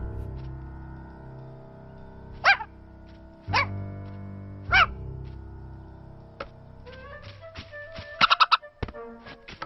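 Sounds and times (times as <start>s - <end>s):
game music: 0.0s - 9.6s
dogs barking and yipping in a game: 3.5s - 3.8s, 4.7s - 5.0s.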